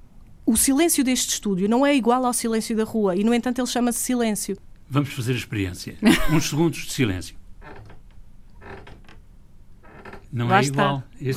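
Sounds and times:
speech: 0.5 - 7.4, 10.3 - 11.3
laughter: 6.0 - 6.7
chair creaking as someone shifts weight in a studio: 7.6 - 10.8.

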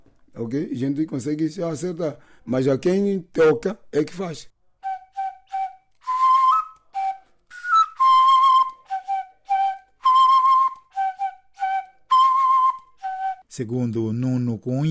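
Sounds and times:
speech: 0.4 - 4.6, 13.6 - 14.8
traditional Doxi flute playing a lively melody: 4.8 - 13.5.

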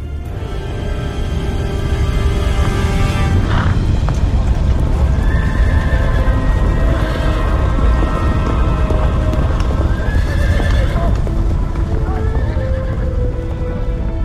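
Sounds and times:
many horses galloping: 0.0 - 14.2
horses whinnying and neighing: 2.0 - 13.8.

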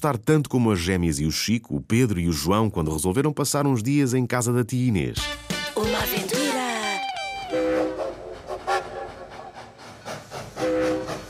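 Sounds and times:
speech: 0.0 - 6.2
train running on rails: 7.5 - 11.2.

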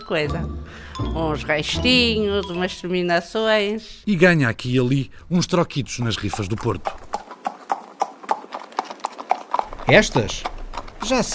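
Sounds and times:
speech: 0.1 - 7.1, 9.9 - 11.3
horses' hooves clip-clopping: 5.9 - 11.3.

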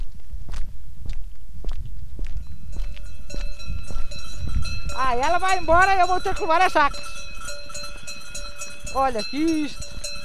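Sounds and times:
footsteps walking along a road outdoors: 0.0 - 10.2
clinking bell-like ringing: 2.4 - 10.2
speech: 5.0 - 7.2, 8.9 - 9.9.

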